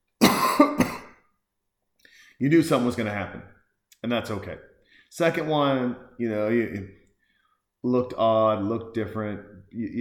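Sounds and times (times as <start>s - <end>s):
throat clearing: 0.2s - 1.2s
coughing: 0.2s - 1.3s
speech: 2.4s - 7.0s, 7.8s - 9.9s.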